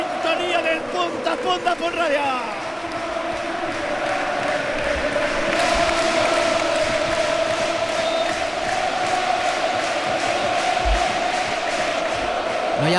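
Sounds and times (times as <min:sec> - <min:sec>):
football stadium crowd roaring: 0:00.0 - 0:12.9
speech: 0:00.6 - 0:02.8, 0:12.8 - 0:12.9
football stadium crowd whistling in protest: 0:07.8 - 0:09.0.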